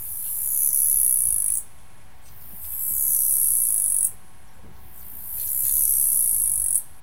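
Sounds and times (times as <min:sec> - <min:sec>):
cricket chirping at night on an island: 0:00.0 - 0:01.7, 0:02.4 - 0:04.2, 0:04.9 - 0:07.0.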